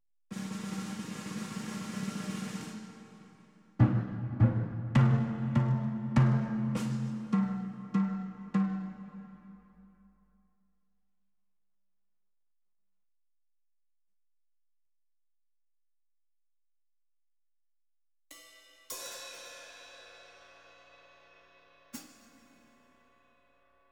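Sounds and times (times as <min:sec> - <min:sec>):
drum kit: 0:00.3 - 0:09.3.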